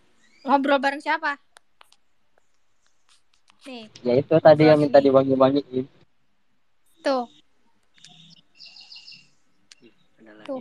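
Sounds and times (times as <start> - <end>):
bird chirping: 0.1 - 0.8, 7.1 - 10.5
speech: 0.4 - 1.5, 3.6 - 6.0, 7.0 - 7.4, 10.3 - 10.5.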